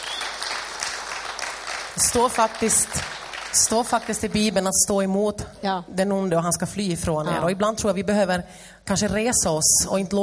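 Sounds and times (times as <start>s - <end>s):
audience applause: 0.0s - 4.5s
speech: 2.0s - 10.2s.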